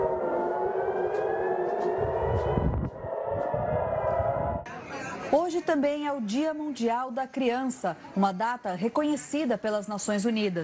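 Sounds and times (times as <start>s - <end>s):
air raid sirens wailing across Tel Aviv Israel: 0.0s - 4.7s
low rumbling noise: 0.0s - 4.7s
speech: 5.5s - 10.6s.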